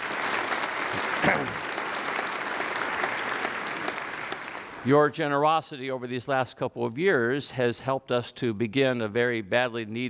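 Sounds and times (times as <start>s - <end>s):
audience applause: 0.0s - 5.0s
speech: 0.9s - 1.7s, 4.8s - 10.0s.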